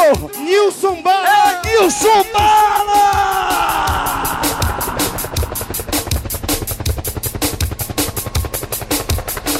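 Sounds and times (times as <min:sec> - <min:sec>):
speech: 0:00.1 - 0:02.8
helicopter sound effect with rotor chopping: 0:01.6 - 0:09.5.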